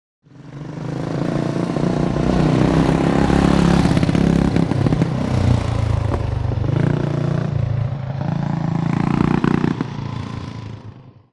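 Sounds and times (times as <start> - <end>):
Norton motorcycle accelerating in through gears: 0.2 - 11.3.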